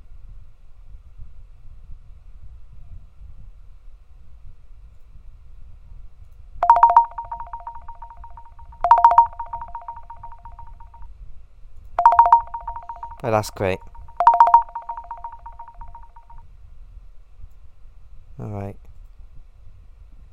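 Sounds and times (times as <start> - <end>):
phone ringtone: 6.6 - 10.9, 12.0 - 16.4
speech: 13.2 - 13.9.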